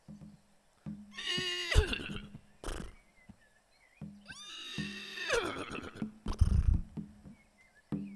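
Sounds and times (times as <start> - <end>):
group of people imitating horse whinnies: 1.2 - 3.0, 4.3 - 6.8.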